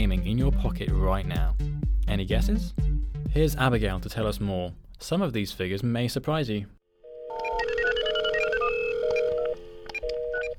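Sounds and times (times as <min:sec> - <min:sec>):
speech: 0:00.2 - 0:06.8
electronic mobile phone ringtone or dialing effect: 0:07.0 - 0:10.5.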